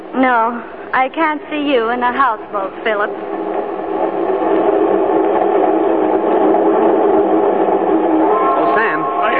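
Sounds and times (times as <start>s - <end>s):
train rolling along the rails: 0.0s - 9.3s
speech: 0.2s - 3.4s.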